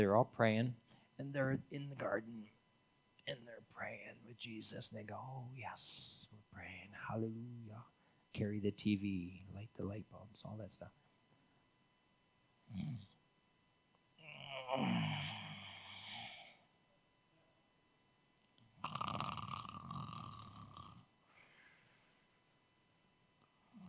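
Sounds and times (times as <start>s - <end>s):
speech: 0.0s - 2.6s, 3.2s - 11.0s, 12.7s - 13.1s, 14.5s - 15.4s
person imitating loud rasping snoring: 12.7s - 13.2s, 14.2s - 16.6s, 18.8s - 21.1s
short breathy sound: 14.2s - 16.6s.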